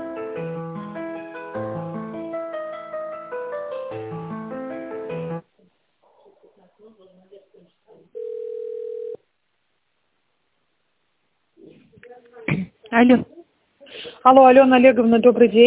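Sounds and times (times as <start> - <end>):
phone-line talk: 6.1 - 9.1
steady telephone line tone while an office call is transferred: 8.2 - 9.2
speech: 13.0 - 13.3, 14.2 - 15.6.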